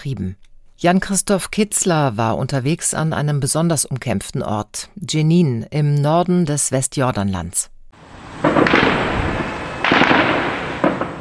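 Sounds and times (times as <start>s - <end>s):
speech: 0.0s - 7.8s
heavy gunshots on a street with long rumbling echo: 8.0s - 11.1s.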